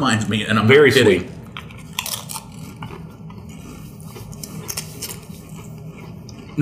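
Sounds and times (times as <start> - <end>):
speech: 0.0 - 1.4
tortilla chip being bitten and chewed: 1.6 - 6.6.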